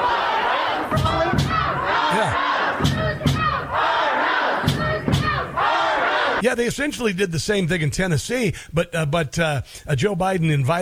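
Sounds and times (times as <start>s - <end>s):
crowd of protesters yelling and chanting: 0.0s - 6.4s
protesters pounding heavily on a door: 0.9s - 1.8s, 2.8s - 3.7s, 4.6s - 5.5s
speech: 6.5s - 10.8s.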